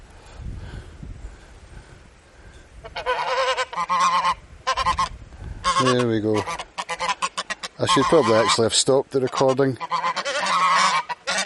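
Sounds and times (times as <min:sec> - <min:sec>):
speech: 0:02.8 - 0:05.1, 0:05.8 - 0:06.7, 0:07.8 - 0:10.0
geese honking: 0:02.8 - 0:11.4.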